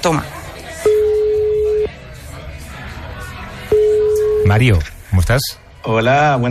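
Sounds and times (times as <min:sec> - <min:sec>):
speech: 0:00.0 - 0:00.4, 0:04.5 - 0:06.4
faint crowd noise: 0:00.0 - 0:06.4
phone line ringback tone beep: 0:00.8 - 0:01.9, 0:03.7 - 0:04.6.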